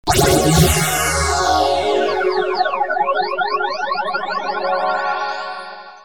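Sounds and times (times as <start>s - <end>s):
Kawai S5000 keyboard instrument: 0.1s - 6.0s.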